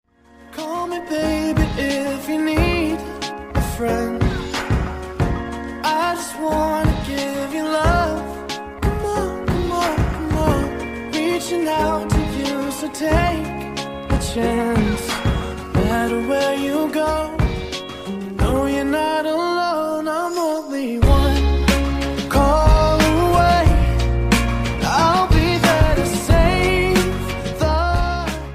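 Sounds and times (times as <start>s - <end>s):
English song ringtone: 0.2s - 27.9s.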